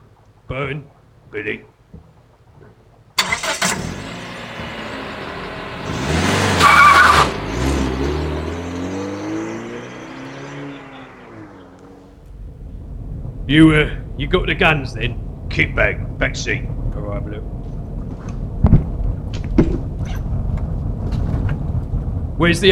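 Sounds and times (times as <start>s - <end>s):
speech: 0.5s - 1.8s, 13.5s - 17.6s, 22.4s - 22.6s
Smart car engine starting, revving and driving off outside a bar in Romford: 3.2s - 22.6s
tyre squeal: 6.4s - 7.4s.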